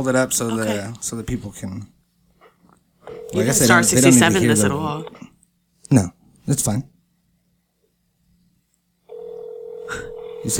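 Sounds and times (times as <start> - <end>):
speech: 0.0 - 2.0, 3.3 - 5.3, 5.9 - 6.9, 9.9 - 10.5
steady electronic phone dialing tone: 3.0 - 4.2, 9.1 - 10.5.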